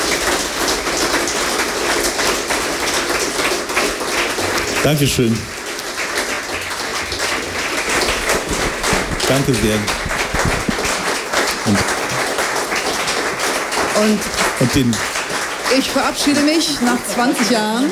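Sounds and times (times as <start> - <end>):
audience applause: 0.0 - 17.9
speech: 4.8 - 5.6, 9.3 - 10.6, 11.7 - 12.0, 14.0 - 15.2, 15.8 - 17.9.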